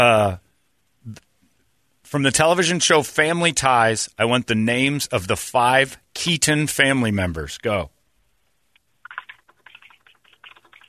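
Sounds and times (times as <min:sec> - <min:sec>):
speech: 0:00.0 - 0:00.4, 0:01.0 - 0:01.3, 0:02.1 - 0:08.0
rapid computer keyboard typing: 0:09.0 - 0:10.8.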